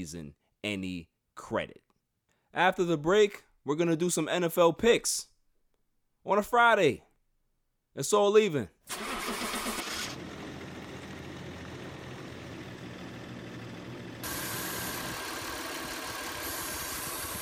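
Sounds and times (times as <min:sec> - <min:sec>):
speech: 0:00.0 - 0:01.9, 0:02.5 - 0:05.3, 0:06.2 - 0:07.1, 0:08.0 - 0:09.2
car engine cranking without starting: 0:08.9 - 0:17.3.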